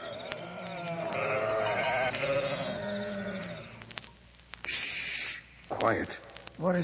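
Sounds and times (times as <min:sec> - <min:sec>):
sheep from a flock bleating on the hills near Bethlehem at night: 0:00.0 - 0:03.9
speech: 0:05.8 - 0:06.8.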